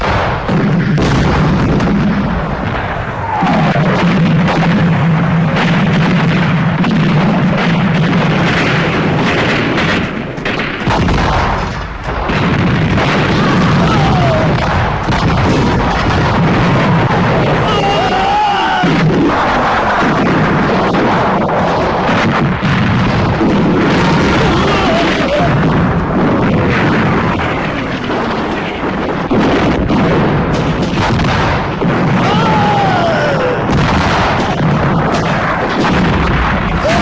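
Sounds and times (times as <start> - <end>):
dense barrage of artillery fire and explosions: 0.0 - 37.0.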